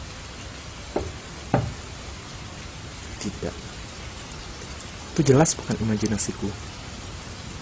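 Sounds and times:
faint steady hiss: 0.0 - 7.6
knocking on a window: 0.9 - 1.9
speech: 3.2 - 3.7, 5.2 - 6.7.

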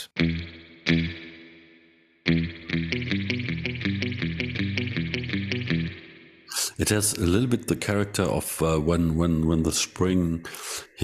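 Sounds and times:
electric guitar through a Kemper Profiler with dirt parameter turned up: 0.0 - 1.6, 2.3 - 7.5
speech: 6.8 - 11.0.

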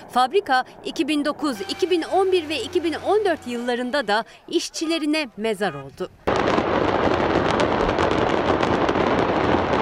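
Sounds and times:
speech: 0.1 - 6.6
fireworks factory exploding with crackling and popping bursts: 6.2 - 9.7.

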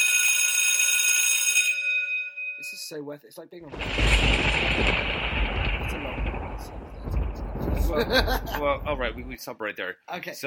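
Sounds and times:
bell ringing with a bright metallic steady tone: 0.0 - 2.8
speech: 2.6 - 7.2, 7.8 - 10.4
laughter: 7.7 - 9.3.

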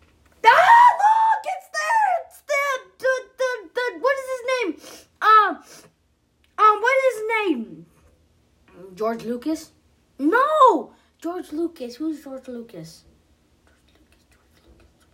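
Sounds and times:
child yelling in high-pitched bursts: 0.4 - 5.7, 6.6 - 7.7, 10.2 - 10.9
speech: 9.0 - 13.1.

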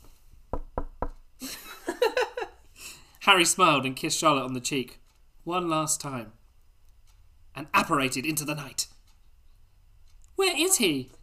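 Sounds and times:
firm knocks on a door: 0.5 - 1.2
speech: 3.3 - 6.4, 7.6 - 8.9, 10.4 - 11.2.

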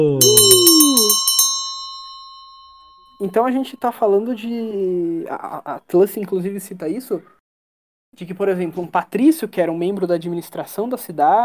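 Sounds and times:
small bell ringing: 0.0 - 4.5
speech: 3.2 - 7.4, 8.1 - 11.4.

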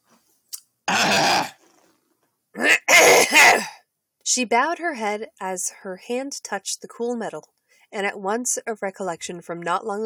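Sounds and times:
person clearing throat: 0.9 - 1.6, 2.6 - 3.8
speech: 4.4 - 10.0.

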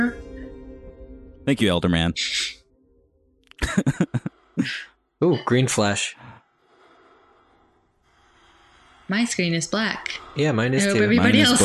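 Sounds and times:
speech: 1.5 - 2.6, 3.6 - 6.3, 9.1 - 11.6
laughter: 3.6 - 4.7, 10.9 - 11.6
person breathing into microphone: 6.5 - 10.4.

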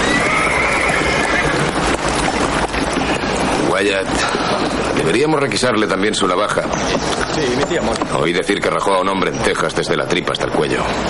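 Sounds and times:
white horse neighing: 0.0 - 4.9
dense wash of noise: 0.0 - 11.0
speech: 3.8 - 4.4, 5.0 - 11.0.

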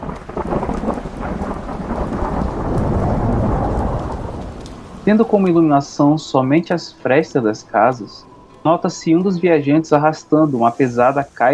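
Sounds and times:
deep rumble of thunder: 0.0 - 8.4
heavy torrential cold rain pouring on a cobbled street: 0.0 - 11.5
speech: 5.1 - 11.5.

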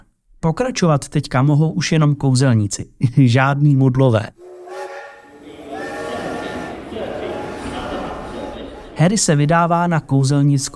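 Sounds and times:
speech: 0.4 - 4.4, 9.0 - 10.7
steam train whistle: 4.4 - 9.1
faint indistinct voices: 4.7 - 9.2
laughter: 5.1 - 9.7.

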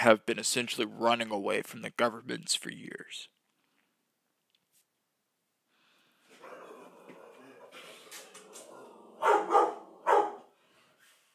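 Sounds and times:
speech: 0.0 - 3.4
female dog barking: 6.4 - 7.8, 8.7 - 10.5.

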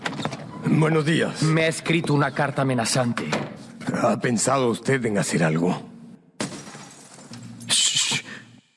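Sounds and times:
speech: 0.7 - 5.9
two upstairs room windows shattering: 6.4 - 7.4.

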